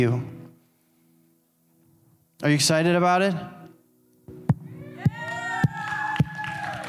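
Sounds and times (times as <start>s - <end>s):
speech: 0.0s - 0.4s, 2.4s - 3.6s
crowd cheering and whooping: 4.8s - 6.8s.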